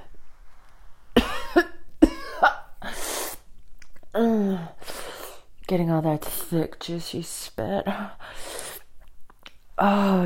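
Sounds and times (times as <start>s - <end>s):
person gagging and coughing from a hand pushed down the throat: 1.2s - 2.8s
speech: 5.7s - 8.6s, 9.8s - 10.2s.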